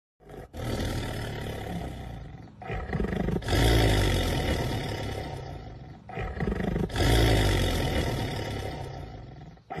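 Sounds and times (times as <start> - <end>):
black panther roaring: 0.2 - 9.7.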